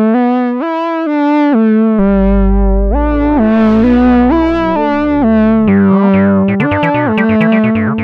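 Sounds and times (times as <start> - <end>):
Moog juno 303 synthesizer: 0.2 - 7.9.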